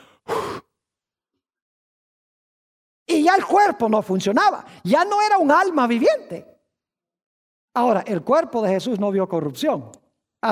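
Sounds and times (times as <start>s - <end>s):
person imitating a dying man's last breath exhaling: 0.0s - 0.7s
speech: 3.3s - 6.5s, 7.8s - 10.5s.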